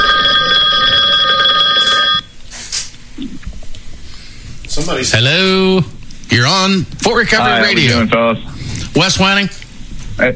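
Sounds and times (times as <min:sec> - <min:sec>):
telephone ringing with an incoming call: 0:00.0 - 0:02.3
speech: 0:04.8 - 0:09.6, 0:10.2 - 0:10.3.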